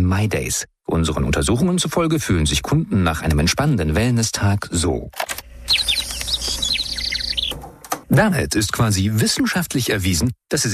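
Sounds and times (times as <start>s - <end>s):
speech: 0.0s - 6.0s, 8.1s - 10.7s
robin singing: 5.6s - 7.6s.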